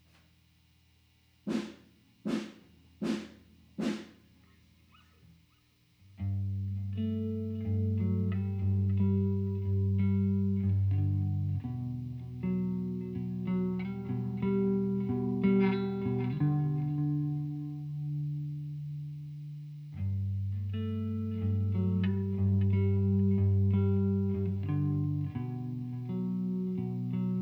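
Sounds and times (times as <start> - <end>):
bass guitar through a bass amp: 6.2 - 27.4.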